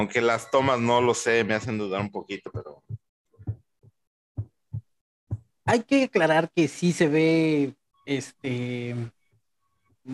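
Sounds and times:
speech: 0:00.0 - 0:02.8, 0:05.7 - 0:09.2
deep heartbeat sound effect: 0:01.5 - 0:05.8.

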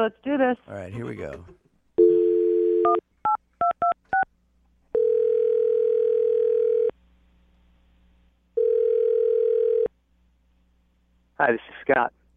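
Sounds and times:
speech: 0:00.0 - 0:01.6, 0:02.8 - 0:03.0, 0:11.4 - 0:12.2
telephone dial tone: 0:02.0 - 0:03.0, 0:05.0 - 0:06.9, 0:08.6 - 0:09.9.

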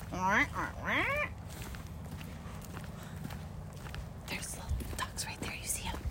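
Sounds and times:
geese honking: 0:00.0 - 0:01.4
low rumble of outdoor noise: 0:00.0 - 0:06.0.

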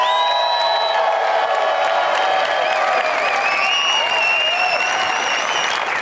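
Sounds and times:
live audience applause: 0:00.0 - 0:06.0
live audience cheering with whoops and shouts: 0:00.0 - 0:06.0.

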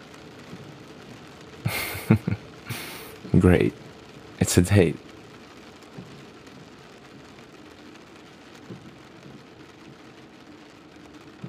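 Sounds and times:
steady rain in a dense even patter: 0:00.0 - 0:11.4
laughter: 0:01.7 - 0:03.1
speech: 0:02.1 - 0:02.4, 0:03.4 - 0:03.8, 0:04.5 - 0:05.1.

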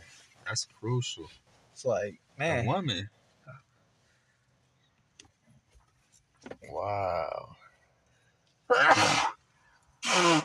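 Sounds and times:
speech: 0:00.5 - 0:03.6, 0:06.7 - 0:07.6, 0:08.7 - 0:09.3
loud sneezes: 0:08.7 - 0:09.4, 0:10.0 - 0:10.4.

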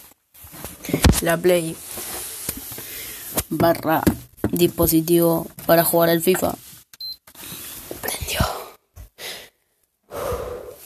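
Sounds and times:
speech: 0:00.8 - 0:01.9, 0:03.5 - 0:06.6
breathy exhalations into the microphone: 0:02.1 - 0:03.4, 0:07.4 - 0:10.8.

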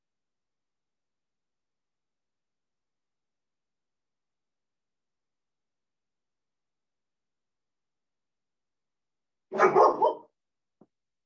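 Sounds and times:
dog barking: 0:09.5 - 0:10.4.

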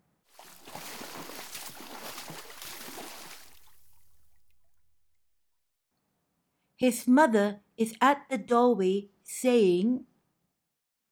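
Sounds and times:
water sloshing in a bathtub: 0:00.3 - 0:04.8
speech: 0:06.8 - 0:10.1.

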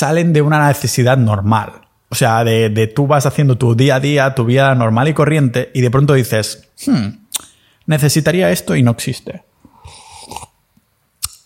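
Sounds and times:
speech: 0:00.0 - 0:10.5
mouth noises: 0:06.8 - 0:07.6, 0:09.6 - 0:10.6, 0:11.2 - 0:11.4
loud dramatic wet throaty gulping swallow: 0:09.8 - 0:10.6.

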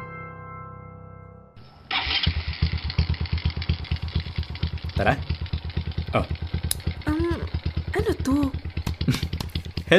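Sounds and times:
motorcycle engine starting and puttering: 0:01.6 - 0:09.9
speech: 0:05.0 - 0:05.3, 0:06.1 - 0:06.4, 0:08.2 - 0:08.6.

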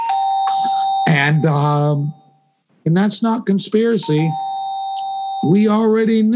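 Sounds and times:
electronic doorbell ringing: 0:00.0 - 0:02.6, 0:04.0 - 0:05.6
speech: 0:01.0 - 0:02.2, 0:02.8 - 0:04.4, 0:05.4 - 0:06.3.

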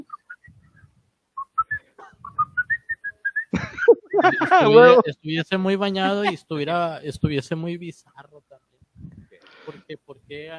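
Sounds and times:
person whistling a short lilting tune: 0:01.4 - 0:03.5
laughter: 0:03.5 - 0:05.0, 0:06.0 - 0:06.5
speech: 0:04.2 - 0:08.4, 0:09.9 - 0:10.5.

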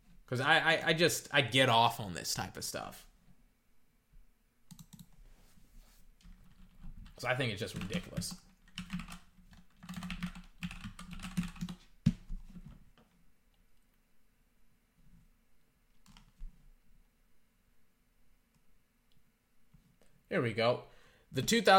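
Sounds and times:
speech: 0:00.3 - 0:03.1, 0:07.2 - 0:08.9, 0:20.4 - 0:21.7
typing on a computer keyboard: 0:04.7 - 0:05.2, 0:06.2 - 0:12.6.

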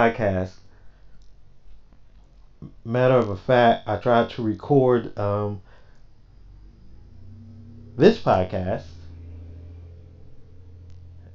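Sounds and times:
speech: 0:00.0 - 0:00.6, 0:02.6 - 0:05.7, 0:08.0 - 0:09.0
car driving by outside: 0:06.2 - 0:11.3.

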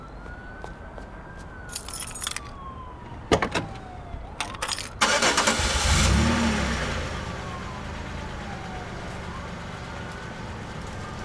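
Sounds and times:
keys jingling and clicking: 0:01.7 - 0:02.5, 0:04.4 - 0:05.0
car engine cranking and starting: 0:04.9 - 0:11.0.

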